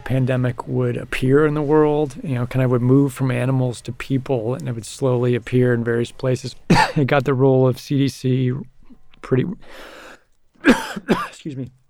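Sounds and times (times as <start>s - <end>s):
speech: 0.1s - 10.0s, 10.6s - 11.8s
man coughing: 6.7s - 7.0s, 10.6s - 11.5s.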